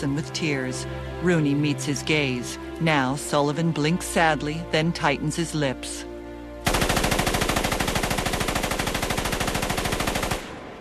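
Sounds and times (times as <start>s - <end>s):
speech: 0.0s - 6.1s
Tommy gun firing: 6.6s - 10.7s.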